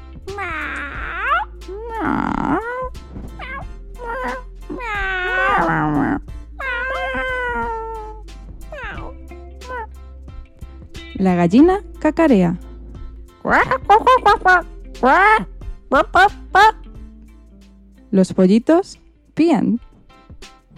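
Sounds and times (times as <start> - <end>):
cat and kittens meowing: 0.3 - 9.9
speech: 2.0 - 2.6, 11.2 - 12.6, 13.4 - 16.8, 18.1 - 19.9.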